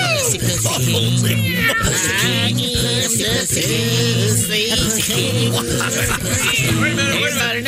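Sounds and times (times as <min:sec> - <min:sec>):
laughter: 0:00.0 - 0:07.6
many cats meowing: 0:01.2 - 0:02.5.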